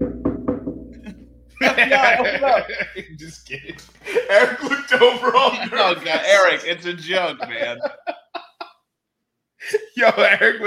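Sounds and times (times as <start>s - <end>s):
firm knocking on a door: 0.0s - 1.1s
laughter: 1.6s - 8.7s, 9.6s - 10.6s
speech: 1.7s - 8.0s, 9.6s - 10.6s.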